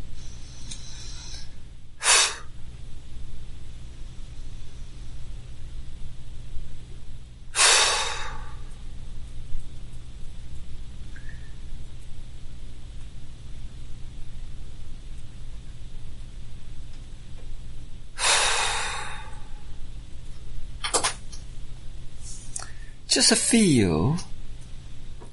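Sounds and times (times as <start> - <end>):
faint low hum: 0.0 - 25.3
slow deep breathing close to the microphone: 0.1 - 2.5, 7.6 - 8.8, 18.2 - 19.8, 22.6 - 23.0
speech: 23.1 - 24.3.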